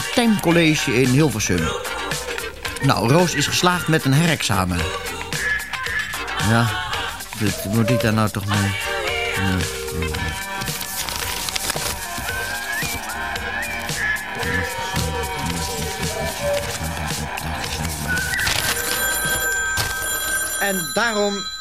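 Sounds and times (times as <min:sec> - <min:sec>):
laughter: 0:00.0 - 0:10.9, 0:12.1 - 0:19.6
speech: 0:00.2 - 0:02.0, 0:02.8 - 0:05.2, 0:06.4 - 0:06.8, 0:07.4 - 0:10.8, 0:20.6 - 0:21.5
busy cluttered noise: 0:01.3 - 0:21.5
telephone ringing with bright jangling bell tone: 0:18.1 - 0:21.5.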